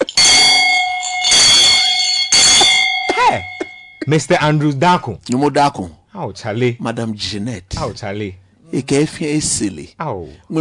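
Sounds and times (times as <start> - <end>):
electric bell ringing with a metallic buzz: 0.0 - 4.1
speech: 3.4 - 10.5.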